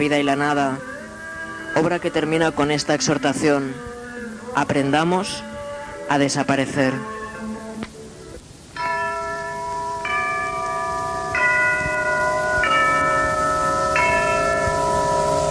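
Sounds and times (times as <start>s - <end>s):
speech: 0.0s - 0.9s, 1.8s - 3.9s, 4.6s - 5.5s, 6.1s - 7.2s
church bells tolling: 8.8s - 15.4s.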